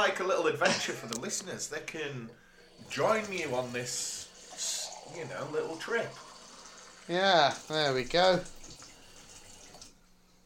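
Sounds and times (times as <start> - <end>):
speech: 0.0 - 6.2, 7.1 - 8.6
water running from a tap: 1.9 - 10.0.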